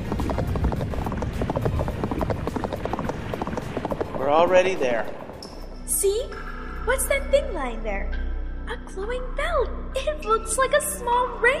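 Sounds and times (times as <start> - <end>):
horse hooves clip-clopping during a ride: 0.0 - 5.7
continuous rumbling background: 0.0 - 11.5
speech: 4.3 - 5.2, 6.0 - 11.5.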